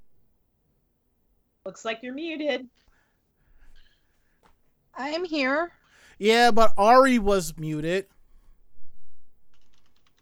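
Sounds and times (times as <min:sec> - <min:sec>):
speech: 0:01.6 - 0:02.9, 0:05.0 - 0:08.1
rapid computer keyboard typing: 0:09.5 - 0:10.1.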